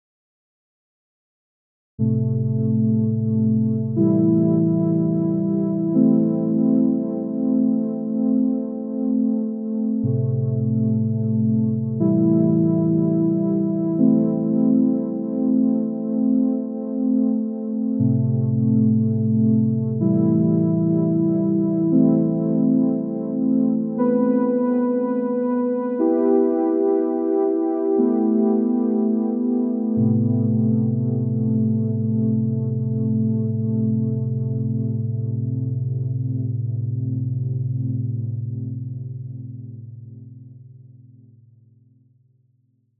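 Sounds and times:
synth chords in A minor: 2.0 - 40.3.

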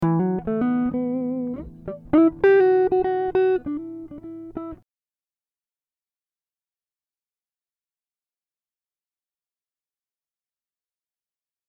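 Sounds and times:
guitar riffs in E minor: 0.0 - 4.8.

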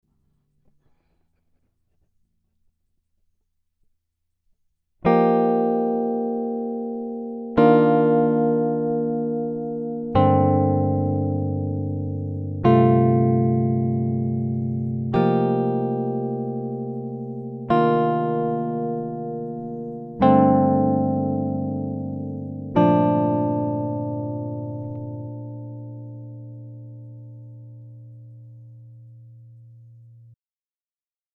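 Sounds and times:
guitar riff in A: 5.0 - 30.4.

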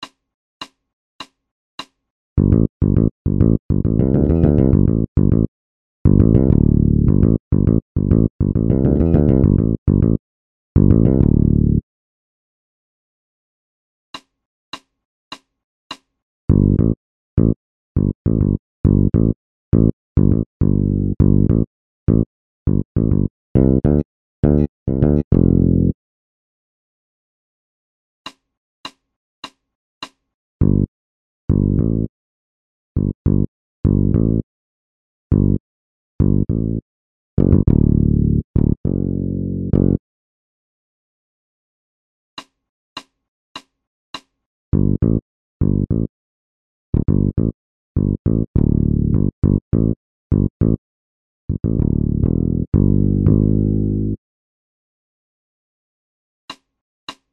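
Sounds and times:
bass loop: 2.4 - 5.5, 6.1 - 10.2, 10.8 - 11.8, 16.5 - 26.0, 30.6 - 30.9, 31.5 - 32.1, 33.0 - 34.4, 35.3 - 35.6, 36.2 - 36.8, 37.4 - 40.0, 44.7 - 46.1, 47.0 - 50.8, 51.5 - 54.2.

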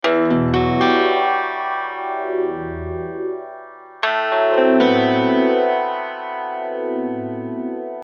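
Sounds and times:
12-string guitar arpeggios: 0.0 - 8.0.

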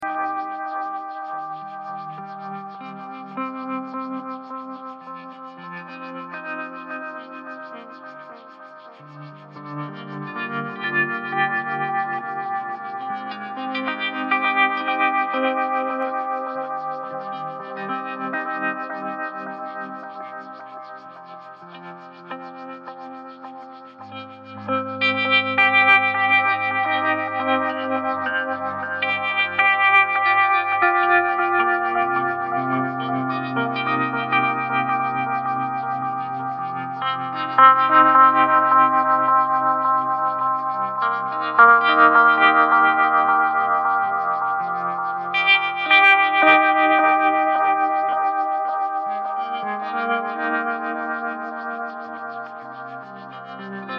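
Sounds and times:
electric guitar solo chords: 0.0 - 53.9.

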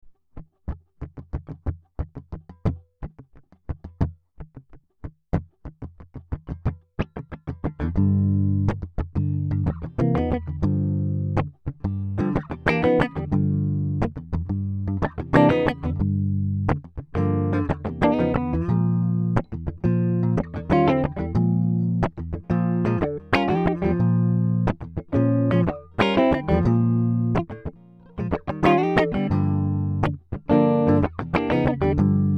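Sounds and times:
funky guitar riff in G minor: 5.8 - 32.3.

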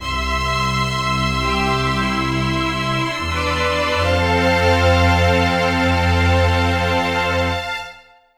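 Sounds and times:
strings in C to F major: 0.0 - 8.2.

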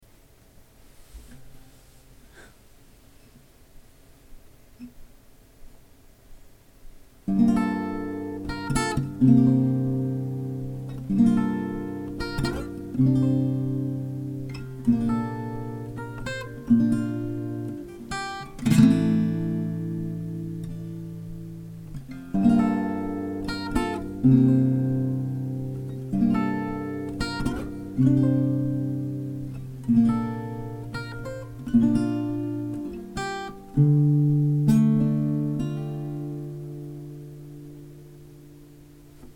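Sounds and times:
folksy guitar motif in D minor in three four time: 7.2 - 39.3.

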